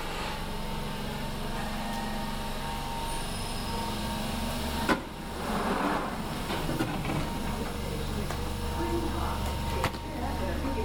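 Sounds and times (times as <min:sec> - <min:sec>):
London Underground train rumbling into Green Park station: 0:00.0 - 0:10.8
voices: 0:07.0 - 0:10.8.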